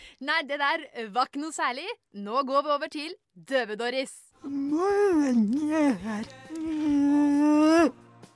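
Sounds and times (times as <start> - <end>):
speech: 0.2 - 8.0
long wavering vocal wail: 4.4 - 8.0.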